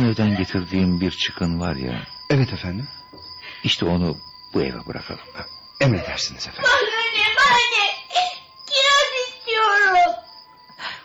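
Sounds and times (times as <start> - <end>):
laughter: 0.0 - 1.0, 5.0 - 6.9
speech: 0.1 - 3.0, 3.6 - 8.3
child crying and whimpering at night in a house: 6.6 - 10.2.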